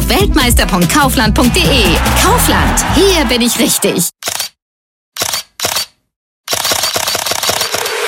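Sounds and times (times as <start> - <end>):
speech: 0.1 - 4.3
camera shutter clicks: 4.2 - 4.6, 5.2 - 8.0.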